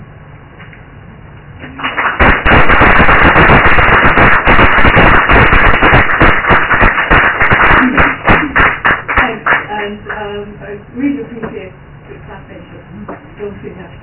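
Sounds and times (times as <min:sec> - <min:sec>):
audience clapping: 0:01.6 - 0:10.3.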